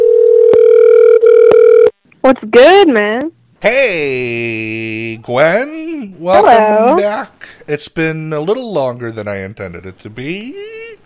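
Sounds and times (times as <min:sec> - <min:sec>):
telephone dial tone: 0:00.0 - 0:01.9
speech: 0:02.2 - 0:10.8.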